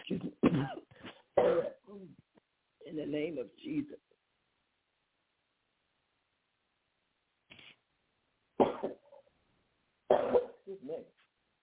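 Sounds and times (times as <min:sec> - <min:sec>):
person coughing harshly: 0:00.0 - 0:02.1, 0:08.6 - 0:09.1, 0:10.1 - 0:10.6
speech: 0:00.6 - 0:00.8, 0:03.1 - 0:04.0.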